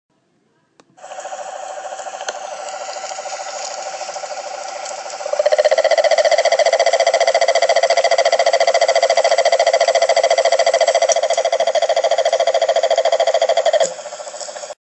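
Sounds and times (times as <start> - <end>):
Rhinella frog: 1.0 - 14.7.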